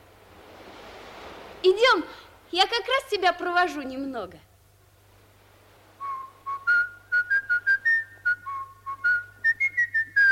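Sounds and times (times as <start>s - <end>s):
speech: 1.6s - 4.5s
person whistling a tune: 6.0s - 10.2s.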